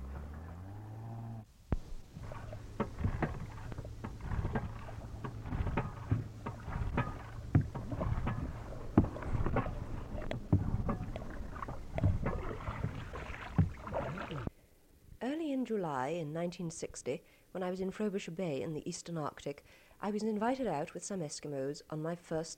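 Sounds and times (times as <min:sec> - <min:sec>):
canoe outboard motor humming: 0:00.0 - 0:14.5
water slapping and knocking against a canoe hull: 0:01.7 - 0:14.5
speech: 0:15.7 - 0:22.5.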